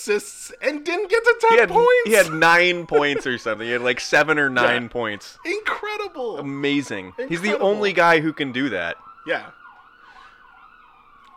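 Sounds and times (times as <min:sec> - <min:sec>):
speech: 0:00.0 - 0:09.6
emergency vehicle siren wailing outside at a distance: 0:00.0 - 0:11.3
laughter: 0:01.6 - 0:05.8, 0:07.3 - 0:08.0.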